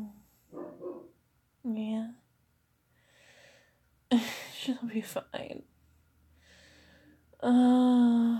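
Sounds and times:
upset dog yelping: 0.5s - 1.1s
speech: 4.1s - 5.7s, 7.4s - 8.3s.

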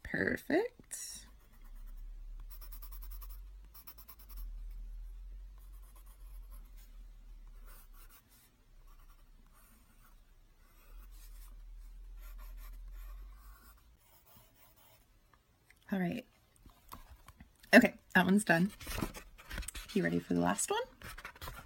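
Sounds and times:
speech: 0.1s - 1.1s, 17.7s - 19.1s, 20.0s - 20.9s
pencil sketching on paper: 2.5s - 4.5s, 5.6s - 6.9s, 7.5s - 15.0s.

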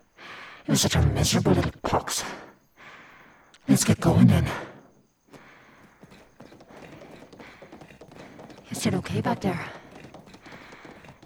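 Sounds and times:
speech: 0.7s - 2.5s, 3.7s - 4.7s, 8.8s - 9.8s
hooves of a horse being ridden clip-clopping: 5.3s - 11.2s.

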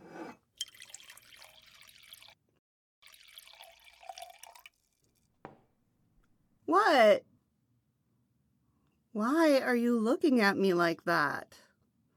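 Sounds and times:
wine pouring from a bottle into glasses: 0.2s - 2.4s, 3.0s - 5.2s
speech: 6.7s - 7.3s, 9.2s - 11.6s.

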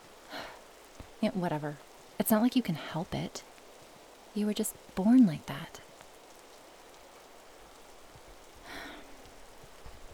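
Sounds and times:
steady rain falling: 0.0s - 10.1s
speech: 1.2s - 3.5s, 4.4s - 5.9s.

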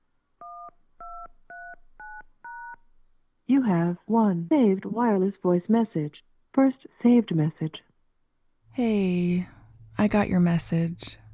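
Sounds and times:
touch-tone keypad tones entering a voicemail password: 0.4s - 2.8s
speech: 3.5s - 7.9s, 8.8s - 11.2s.

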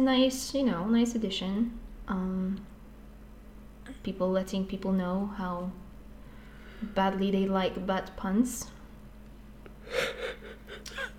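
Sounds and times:
speech: 0.0s - 2.7s, 3.9s - 5.8s, 6.8s - 8.8s, 9.9s - 11.1s
person yawning quietly: 9.9s - 11.1s.

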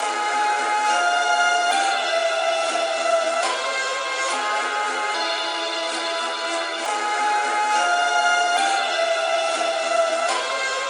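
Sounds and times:
high string pad: 0.0s - 10.8s.

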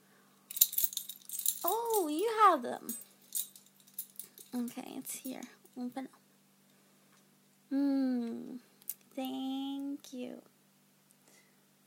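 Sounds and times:
metallic keys jangling: 0.5s - 2.1s, 2.9s - 4.7s
speech: 1.6s - 3.1s, 4.5s - 6.2s, 7.7s - 10.5s.

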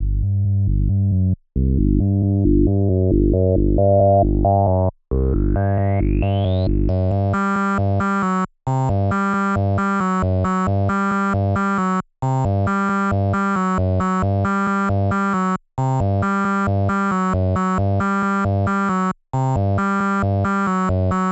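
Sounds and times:
bass at 135 bpm: 0.0s - 21.3s.

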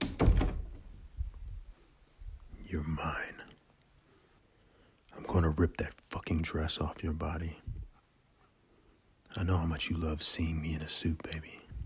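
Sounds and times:
door swinging shut with a thunk: 0.0s - 1.0s
speech: 2.7s - 3.4s, 5.4s - 7.8s, 9.3s - 11.6s.

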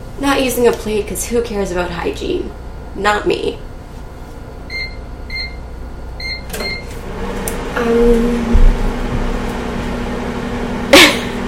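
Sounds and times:
microwave oven low hum while defrosting food: 0.0s - 11.4s
speech: 0.2s - 3.7s, 7.8s - 8.6s
quick electronic keypad beeps: 4.7s - 5.6s, 6.2s - 6.9s
microwave oven starting up with a click: 6.3s - 7.7s.

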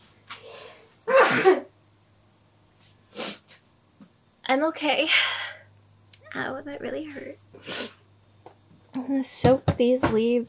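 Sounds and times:
person sneezing: 1.1s - 1.7s
speech: 4.5s - 5.4s, 6.3s - 7.9s, 9.0s - 10.4s.

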